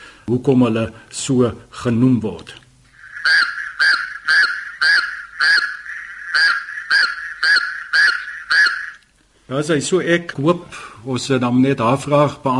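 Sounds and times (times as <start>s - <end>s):
speech: 0.3s - 2.6s, 9.5s - 12.5s
raucous toads of a single species honking: 2.9s - 9.0s.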